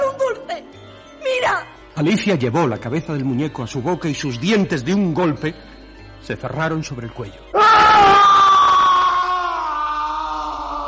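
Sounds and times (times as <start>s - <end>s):
speech: 1.5s - 8.2s
person screaming in pain and agony: 7.6s - 10.8s.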